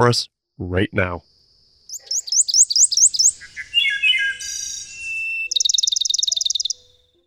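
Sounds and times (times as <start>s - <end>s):
speech: 0.0s - 1.3s
migrating songbird singing chirps, warble and trill: 0.8s - 7.2s.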